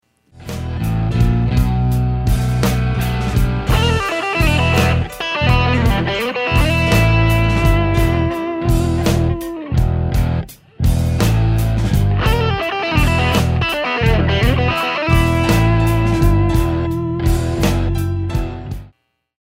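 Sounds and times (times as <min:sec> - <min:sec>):
blues guitar lick in E: 0:00.5 - 0:18.9.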